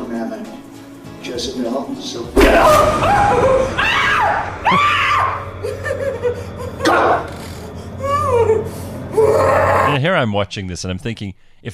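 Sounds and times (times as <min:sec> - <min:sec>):
speech: 0:01.3 - 0:07.3, 0:09.3 - 0:11.7
woman screaming during an exorcism: 0:02.6 - 0:05.5, 0:08.0 - 0:10.0.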